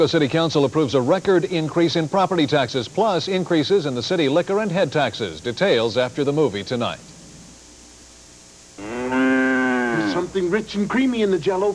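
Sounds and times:
speech: 0.0s - 7.1s, 10.3s - 11.7s
cow mooing: 8.8s - 10.4s.

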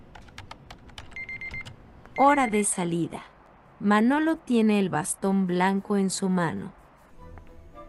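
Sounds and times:
rapid typing on a computer keyboard with a braille display: 0.0s - 1.8s
speech: 2.2s - 6.8s.

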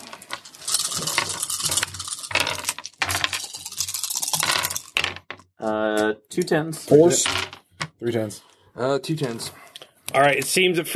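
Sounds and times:
dice rattling on a hard surface: 0.0s - 5.4s, 7.1s - 7.6s
speech: 5.6s - 10.9s.

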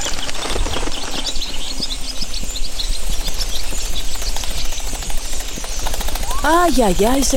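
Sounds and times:
flock of swifts chirping and screeching: 0.0s - 7.3s
speech: 6.5s - 7.3s.

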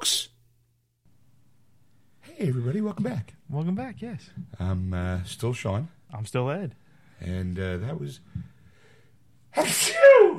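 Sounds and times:
speech: 2.4s - 8.5s
person sneezing: 9.5s - 10.3s.

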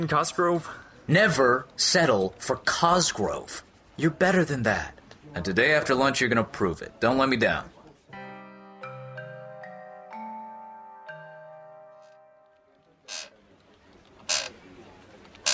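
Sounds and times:
speech: 0.0s - 7.7s
chair creaking in squeaky tones: 13.0s - 13.4s, 14.0s - 14.6s, 15.3s - 15.5s.

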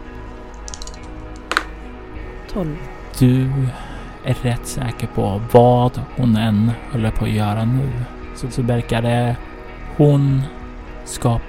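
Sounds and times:
two dice clattering: 0.5s - 1.7s
speech: 2.5s - 11.4s.

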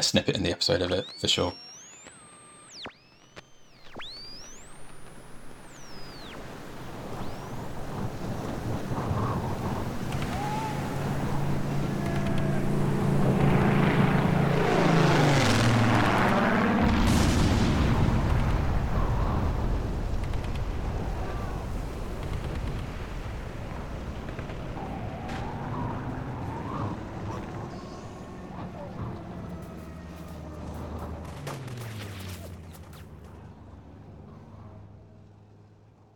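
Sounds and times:
speech: 0.0s - 1.7s
wind over the North Sea: 0.0s - 36.1s
World War II Spitfire propeller warplanes roaring past over the North Sea: 7.9s - 17.0s, 24.6s - 36.1s.

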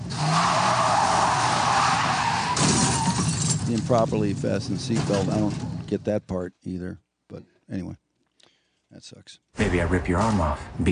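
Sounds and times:
car tires screeching while skidding on a curve: 0.0s - 4.4s
speech: 3.7s - 8.0s, 8.9s - 10.9s.

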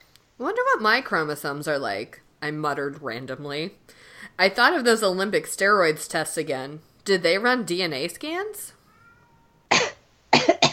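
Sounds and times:
speech: 0.4s - 8.8s
person coughing self-consciously: 9.7s - 10.7s.

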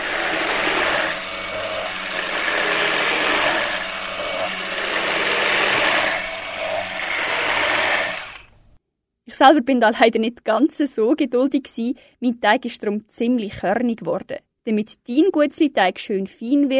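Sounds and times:
immersion blender grinding dry oat flakes into flour: 0.0s - 8.8s
speech: 9.4s - 16.7s.

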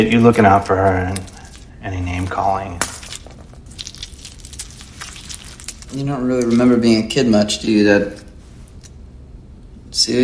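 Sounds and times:
speech: 0.0s - 2.8s, 5.9s - 8.2s, 10.0s - 10.2s
man chewing and squishing a lychee in his mouth: 0.1s - 6.8s.

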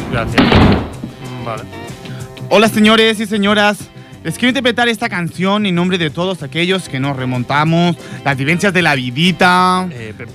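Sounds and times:
heavy door slamming shut: 0.0s - 1.2s
speech: 0.2s - 1.8s, 2.5s - 10.3s.

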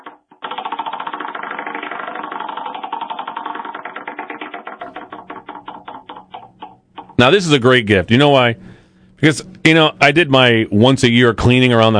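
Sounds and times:
prize wheel spinning with clicking pointer: 0.0s - 7.5s
speech: 7.2s - 11.9s.

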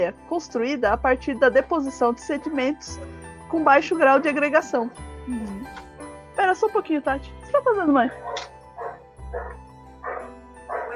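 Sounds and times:
speech: 0.0s - 8.5s
dog barking in a backyard: 8.2s - 10.9s.

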